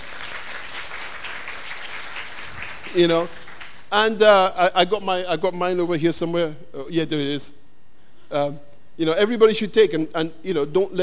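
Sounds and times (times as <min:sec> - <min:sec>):
church congregation applauding: 0:00.0 - 0:03.9
speech: 0:02.9 - 0:07.6, 0:08.3 - 0:11.0.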